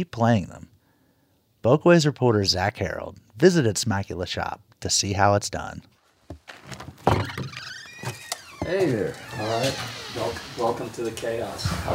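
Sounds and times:
speech: 0.0s - 0.6s, 1.6s - 6.8s, 8.7s - 11.9s
front door of a musical instrument repair workshop opening with a thunk: 6.6s - 10.8s
faint high-pitched door squeal as it swings: 7.2s - 11.0s.

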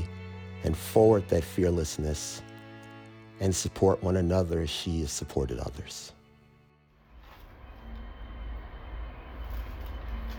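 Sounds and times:
speech: 0.6s - 2.5s, 3.4s - 6.2s
train interior rumble and rattle while in motion: 7.1s - 10.3s.

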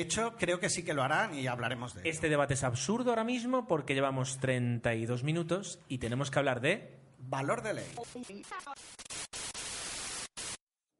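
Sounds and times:
speech: 0.0s - 9.0s
static on a phone call: 7.8s - 10.6s.

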